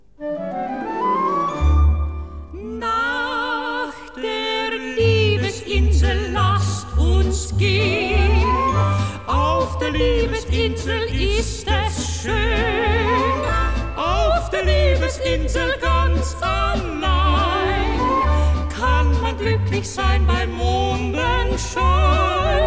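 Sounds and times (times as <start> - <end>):
operetta orchestra: 0.2 - 2.7, 6.0 - 22.6
choir: 1.0 - 22.6.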